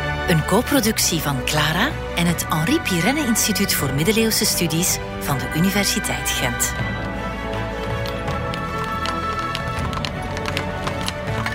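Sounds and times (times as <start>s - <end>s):
speech: 0.3s - 7.1s
horses' hooves clopping while pulling a carriage: 4.0s - 11.5s.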